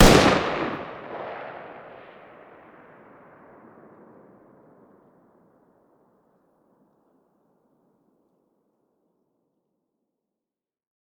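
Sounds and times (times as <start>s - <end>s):
distant 5.56x45 machine gun fire outdoors: 0.0s - 1.8s.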